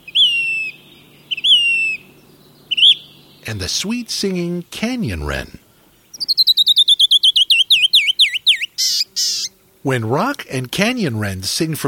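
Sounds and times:
Say's Phoebe calling on a rocky talus slope: 0.0s - 3.5s, 6.1s - 9.6s
speech: 3.4s - 5.6s, 9.8s - 11.8s.

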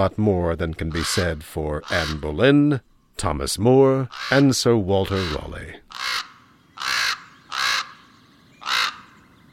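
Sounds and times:
speech: 0.0s - 5.9s
common raven croaks: 0.8s - 2.5s, 4.1s - 9.3s.

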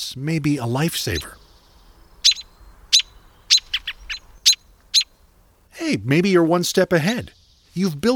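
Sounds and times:
speech: 0.0s - 1.4s, 5.8s - 8.1s
bird alarm calls: 0.9s - 5.7s.

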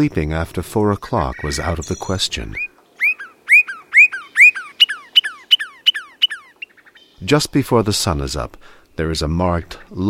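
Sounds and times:
speech: 0.0s - 2.7s, 7.2s - 10.0s
Northern Cardinal whistling song in treetops along the Potomac: 1.3s - 7.2s.

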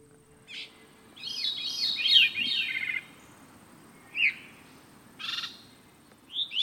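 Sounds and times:
veery song with fluty ringing phrases: 0.0s - 6.6s.

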